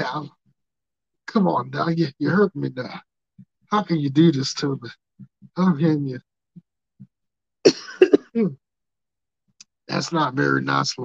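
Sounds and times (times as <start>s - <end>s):
speech: 0.0s - 0.4s, 1.3s - 3.1s, 3.7s - 6.3s, 7.6s - 8.6s, 9.9s - 11.0s
sharp coughs ending in throaty voiced rasp: 7.7s - 8.5s.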